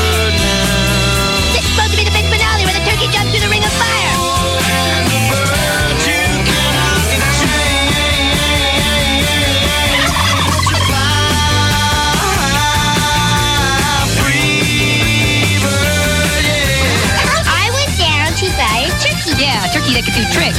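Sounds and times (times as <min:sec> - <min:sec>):
dense busy music: 0:00.0 - 0:20.5
laughter: 0:04.0 - 0:14.0
turkey gobbling: 0:09.8 - 0:11.1.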